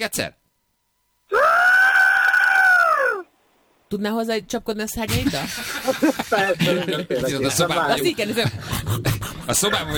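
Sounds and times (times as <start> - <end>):
speech: 0.0 - 0.4, 3.9 - 9.9
person imitating a pterosaur screech: 1.3 - 3.3
laughter: 5.3 - 8.5.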